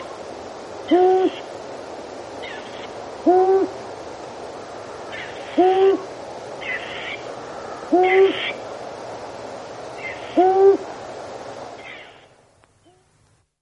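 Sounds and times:
long-eared owl raspy hissing: 0:00.0 - 0:12.4
long-eared owl hooting: 0:00.8 - 0:01.6, 0:02.4 - 0:03.8, 0:05.1 - 0:08.6, 0:10.0 - 0:10.9, 0:11.8 - 0:13.1.

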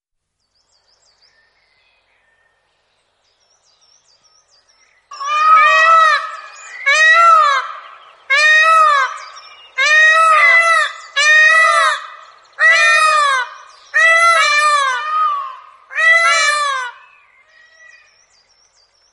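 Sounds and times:
Indian peafowl giving loud nasal wailing calls: 0:05.1 - 0:18.1.

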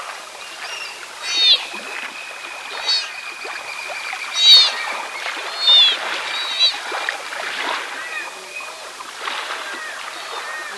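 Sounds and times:
soft hiss: 0:00.0 - 0:10.7
sea otter shrill harmonic squeals: 0:00.7 - 0:03.2, 0:04.2 - 0:06.9.

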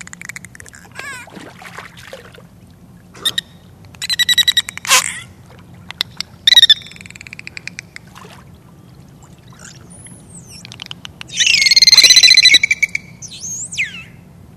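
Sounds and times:
bottlenose dolphin click trains: 0:00.0 - 0:01.2, 0:03.2 - 0:05.3, 0:05.9 - 0:08.2, 0:10.0 - 0:12.2
bottlenose dolphin high swooping whistles: 0:03.2 - 0:05.3, 0:06.0 - 0:08.0, 0:09.5 - 0:14.2.

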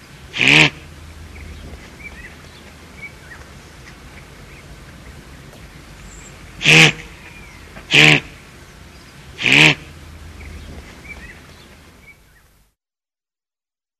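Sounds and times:
Guanaco giving brief buzzy bleats: 0:00.3 - 0:00.9, 0:06.6 - 0:08.4, 0:09.4 - 0:10.0.

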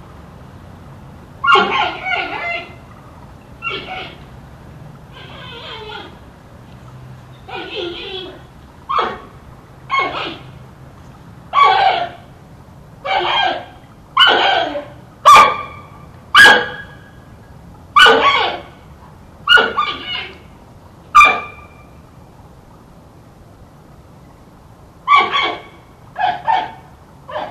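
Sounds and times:
faint background hum: 0:00.0 - 0:27.4
giant panda producing sharp harmonic bleats and yelps: 0:01.4 - 0:02.8, 0:03.6 - 0:04.2, 0:05.1 - 0:06.2, 0:07.5 - 0:09.3, 0:09.9 - 0:10.5, 0:11.5 - 0:12.2, 0:13.0 - 0:15.0, 0:18.0 - 0:18.7, 0:19.5 - 0:20.4, 0:25.1 - 0:26.7.

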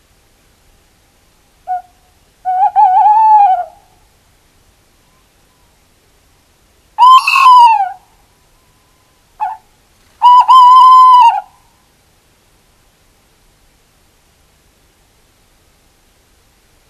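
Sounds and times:
tawny owl hooting and calling: 0:01.6 - 0:04.0, 0:07.0 - 0:08.1, 0:09.4 - 0:11.7.

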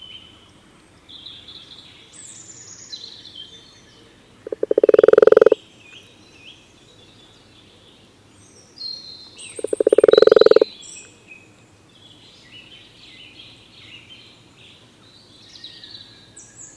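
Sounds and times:
soft birdsong: 0:00.0 - 0:16.7
common toad giving a rattling trill: 0:04.4 - 0:05.6, 0:09.6 - 0:10.7.

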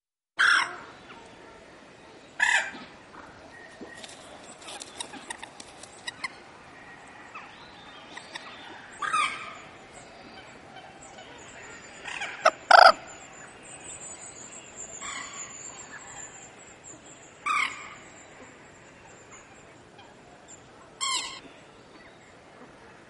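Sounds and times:
faint clicks and rustles: 0:03.7 - 0:06.3
common moorhen giving loud sharp calls: 0:04.7 - 0:22.8.

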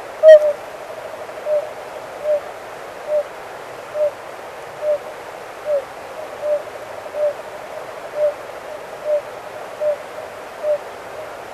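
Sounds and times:
Oriental fire-bellied toad calling: 0:00.0 - 0:00.6, 0:01.4 - 0:03.3, 0:05.6 - 0:07.4, 0:09.0 - 0:10.0, 0:10.6 - 0:10.8
background hiss: 0:00.0 - 0:11.5.

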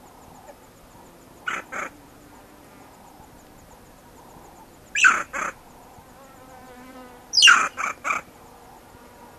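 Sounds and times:
banded mongoose calls with clipped pulses and harsh sweeps: 0:01.4 - 0:02.0, 0:04.9 - 0:05.7, 0:07.3 - 0:08.3.

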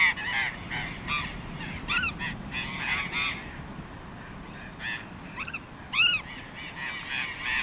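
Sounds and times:
burrowing parakeet calls, rasping screeches and squawks: 0:00.0 - 0:03.5, 0:04.8 - 0:07.6.

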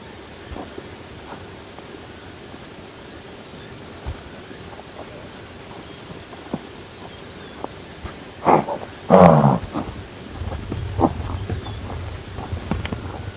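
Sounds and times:
low wind rumble: 0:00.0 - 0:13.3
blue wildebeest giving harsh nasal grunts: 0:08.4 - 0:13.3.

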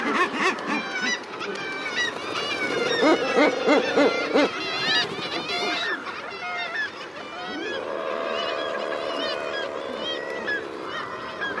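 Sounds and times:
common murres harsh growling calls: 0:00.0 - 0:11.5
steady din of many common murres: 0:00.0 - 0:11.5.

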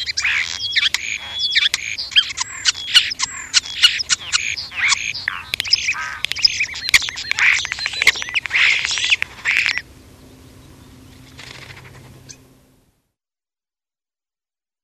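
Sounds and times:
European starling dense scratchy chattering with squawks, clicks and squeaky notes: 0:00.0 - 0:09.9, 0:11.2 - 0:12.4
faint background hum: 0:00.0 - 0:13.2.

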